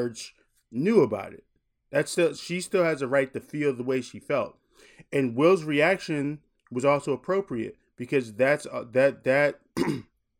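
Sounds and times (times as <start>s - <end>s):
speech: 0.0s - 10.1s
throat clearing: 9.8s - 10.2s.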